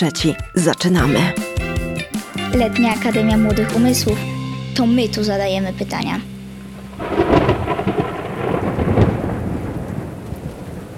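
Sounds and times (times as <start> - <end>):
speech: 0.0 - 1.4, 2.5 - 6.3
deep rumble of thunder: 2.5 - 10.9
steady rain: 6.3 - 10.9.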